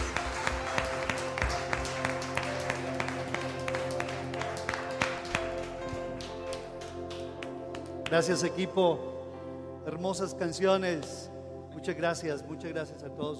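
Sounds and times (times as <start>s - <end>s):
crowd clapping at a religious gathering: 0.0s - 8.5s
sustained musical tone: 0.0s - 12.4s
speech: 8.1s - 9.2s, 9.9s - 13.3s.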